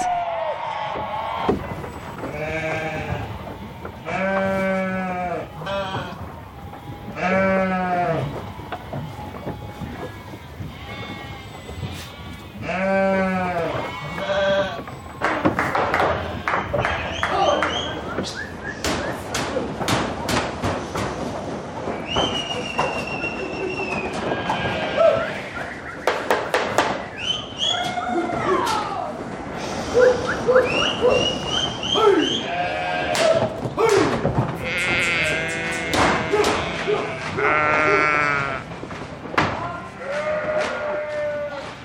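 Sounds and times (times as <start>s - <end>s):
busy outdoor noise: 0.0s - 41.8s
flock of sheep bleating: 2.2s - 15.0s, 24.2s - 25.6s, 32.2s - 33.3s, 34.6s - 38.7s, 40.0s - 41.8s.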